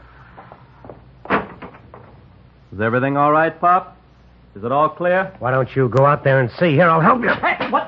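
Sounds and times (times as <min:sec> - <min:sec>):
street door opening clunk and rattle: 0:01.2 - 0:02.2
speech: 0:02.7 - 0:04.0, 0:04.6 - 0:07.8.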